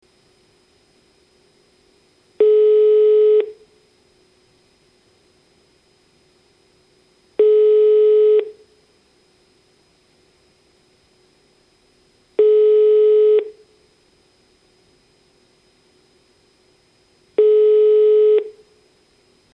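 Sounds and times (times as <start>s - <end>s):
telephone ringing tone: 2.4s - 3.5s, 7.4s - 8.5s, 12.4s - 13.5s, 17.4s - 18.5s.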